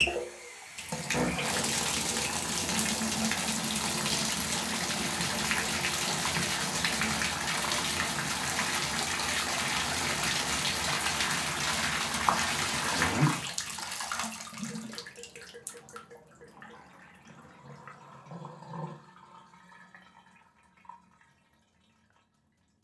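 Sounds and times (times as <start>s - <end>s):
household bathtub tap turned on and shut off: 0.0s - 15.5s.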